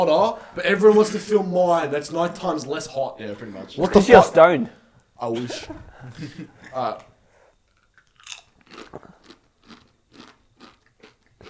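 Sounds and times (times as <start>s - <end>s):
speech: 0.0s - 7.1s, 8.9s - 9.2s
laughter: 5.3s - 7.0s
crunching while chewing spicy snack: 7.7s - 11.4s.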